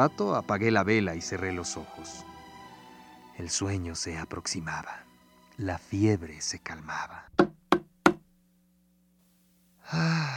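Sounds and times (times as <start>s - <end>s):
speech: 0.0s - 2.3s, 3.4s - 5.0s, 5.6s - 7.5s, 9.9s - 10.3s
sharp dry knocks on a door: 7.4s - 8.2s
long breathy sigh or gasp: 9.8s - 10.3s.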